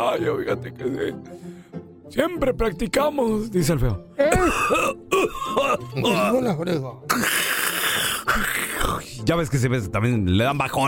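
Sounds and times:
speech: 0:00.0 - 0:07.4, 0:08.4 - 0:10.8
person coughing and yawning at once: 0:04.2 - 0:09.2.

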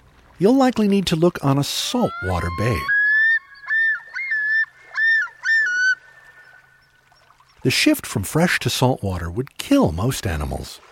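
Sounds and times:
speech: 0:00.4 - 0:03.0, 0:07.6 - 0:10.9
common loon calling: 0:01.8 - 0:07.2.

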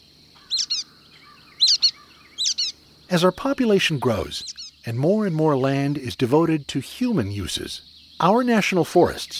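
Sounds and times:
faint hiss: 0:00.0 - 0:09.3
steady high insect drone: 0:00.0 - 0:09.3
brown-headed nuthatch calls: 0:00.4 - 0:04.9
speech: 0:03.1 - 0:09.3.

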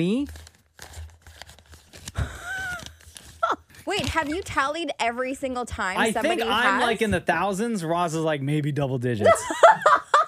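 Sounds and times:
speech: 0:00.0 - 0:00.5, 0:03.9 - 0:10.1
book pages flipped and handled: 0:00.0 - 0:04.7
laughter: 0:09.2 - 0:10.2.

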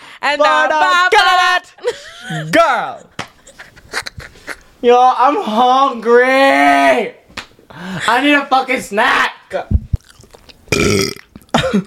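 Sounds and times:
speech: 0:00.3 - 0:03.2, 0:04.8 - 0:09.8, 0:10.8 - 0:11.8
laughter: 0:01.8 - 0:04.7
loud burp: 0:10.7 - 0:11.8.

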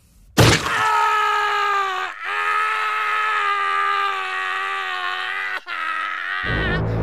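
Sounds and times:
bones cracking: 0:00.4 - 0:01.2
person agonised screaming in pain: 0:00.6 - 0:06.9.

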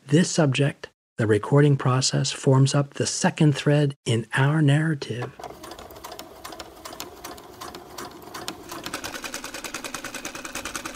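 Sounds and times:
speech: 0:00.1 - 0:05.5
sewing machine running: 0:05.4 - 0:10.9.

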